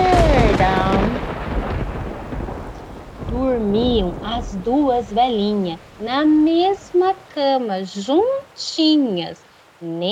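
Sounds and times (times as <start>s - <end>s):
deep rolling thunder rumble from a storm: 0.0s - 7.6s
speech: 4.4s - 10.1s.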